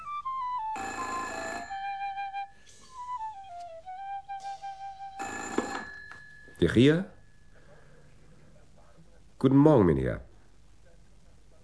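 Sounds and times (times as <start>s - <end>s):
telephone with harsh buzzing bell ringing: 0.8s - 2.2s, 5.2s - 6.8s
speech: 6.6s - 7.2s, 9.4s - 10.3s.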